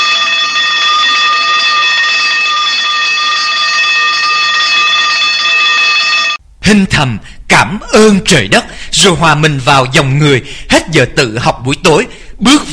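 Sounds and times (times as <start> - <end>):
school lights-out electric bell ringing: 0.0 - 6.4
speech: 6.6 - 12.7.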